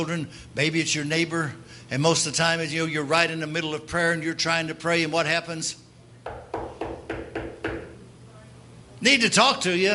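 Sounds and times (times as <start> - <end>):
speech: 0.0 - 5.8, 9.0 - 9.9
firm knocking on a door: 6.2 - 8.0.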